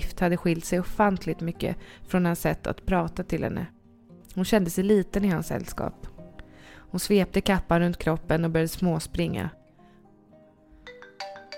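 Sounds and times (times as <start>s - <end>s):
speech: 0.2s - 3.8s, 4.4s - 6.1s, 6.9s - 9.6s
mobile phone ringtone inside a bag: 10.8s - 11.5s.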